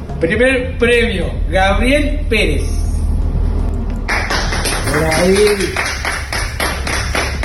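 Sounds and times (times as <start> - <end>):
speech: 0.2 - 2.9, 4.9 - 5.9
crowd applauding: 4.1 - 7.4.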